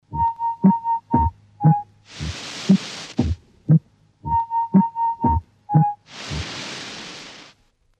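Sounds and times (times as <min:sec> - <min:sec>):
rhythmic variation of electronic sound patterns: 0:00.1 - 0:01.9, 0:04.2 - 0:06.0.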